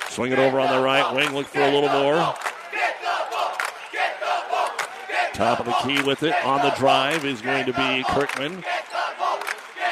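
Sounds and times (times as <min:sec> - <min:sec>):
crowd of students cheering and shouting in a gym at a basketball game: 0:00.0 - 0:09.9
speech: 0:00.1 - 0:03.1, 0:05.4 - 0:09.0.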